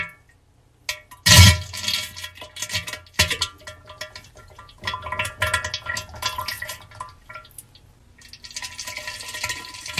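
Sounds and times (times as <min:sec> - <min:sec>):
diarrhea in toilet bowl: 0:01.1 - 0:09.9.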